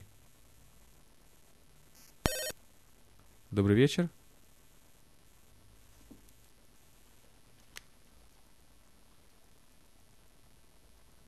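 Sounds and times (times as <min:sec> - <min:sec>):
quiet hiss: 0:00.0 - 0:11.2
telephone electronic ring for incoming call: 0:02.3 - 0:02.6
speech: 0:03.5 - 0:04.2.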